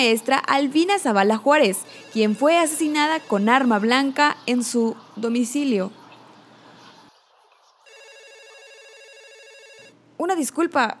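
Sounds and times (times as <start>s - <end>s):
speech: 0.0s - 6.0s, 10.2s - 10.9s
telephone ringing with an incoming call to a studio: 1.3s - 4.2s, 7.9s - 10.0s.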